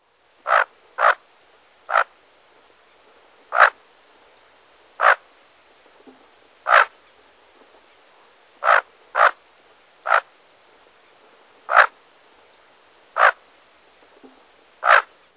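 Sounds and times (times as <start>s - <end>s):
Bufflehead calling: 0.5s - 1.2s, 1.9s - 2.1s, 3.5s - 3.8s, 5.0s - 5.2s, 6.7s - 6.9s, 8.6s - 9.4s, 10.0s - 10.3s, 11.7s - 12.0s, 13.2s - 13.4s, 14.8s - 15.1s.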